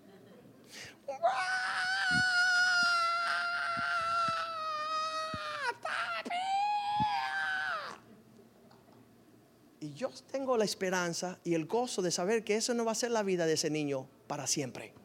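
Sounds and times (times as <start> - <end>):
speech: 0.7 - 1.6, 10.5 - 15.0
voice imitating the gorilla-like screaming of a child: 1.1 - 8.0.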